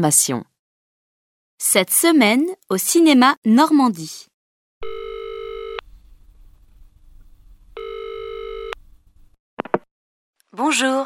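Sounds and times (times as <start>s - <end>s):
speech: 0.0s - 0.5s, 1.6s - 4.3s, 10.6s - 11.0s
telephone ringing with electronic trill: 4.8s - 5.8s, 7.8s - 8.8s.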